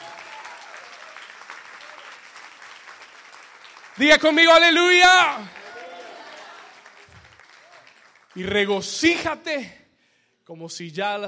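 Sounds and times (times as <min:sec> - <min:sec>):
large church audience applauding: 0:00.0 - 0:08.8
speech: 0:04.0 - 0:05.6, 0:08.4 - 0:09.8, 0:10.5 - 0:11.2.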